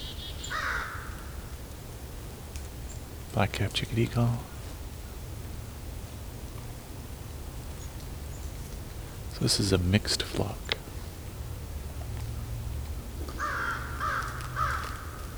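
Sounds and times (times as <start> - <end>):
American crows cawing: 0.0 - 1.7, 13.2 - 15.3
steady low outdoor rumble: 1.0 - 15.3
speech: 3.4 - 4.5, 9.4 - 10.7.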